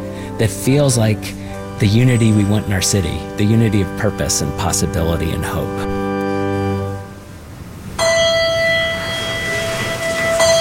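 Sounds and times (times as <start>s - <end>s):
speech: 0.4s - 5.9s
chapel bell ringing to start a service: 1.5s - 4.7s, 8.0s - 10.5s.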